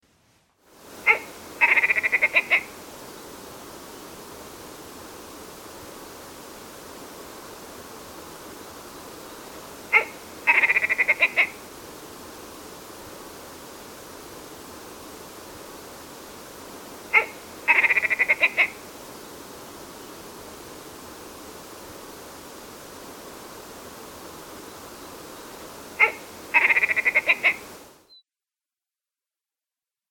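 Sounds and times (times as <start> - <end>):
willow ptarmigan: 1.0 - 2.8, 8.8 - 11.6, 17.0 - 20.3, 24.4 - 27.8.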